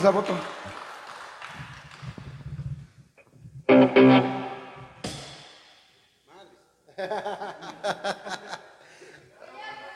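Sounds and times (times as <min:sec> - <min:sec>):
speech: 0:00.0 - 0:00.6
audience applause: 0:00.0 - 0:02.2
laughter: 0:07.0 - 0:08.8.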